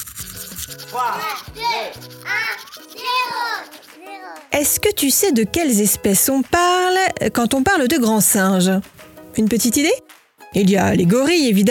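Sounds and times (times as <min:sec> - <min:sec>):
toothbrush scrubbing teeth: 0:00.0 - 0:04.4
speech: 0:00.7 - 0:11.7
child's wavering voiced sounds: 0:01.2 - 0:04.5.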